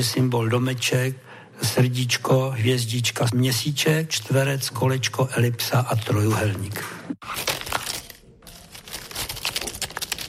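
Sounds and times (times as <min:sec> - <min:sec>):
speech: 0:00.0 - 0:07.6
cards of a tactile board game with cut-out symbols being handled: 0:07.2 - 0:10.2.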